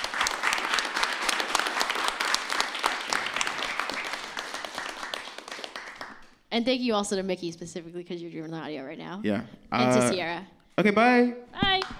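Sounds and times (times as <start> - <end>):
sustained applause from a sizable audience: 0.0 - 6.4
speech: 6.6 - 11.9.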